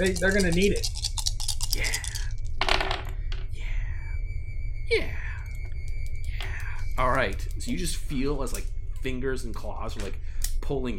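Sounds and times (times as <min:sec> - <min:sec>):
speech: 0:00.0 - 0:01.1, 0:07.0 - 0:10.9
dice rattling and clattering across a hard surface: 0:00.0 - 0:03.4
low steady hum: 0:00.0 - 0:10.9.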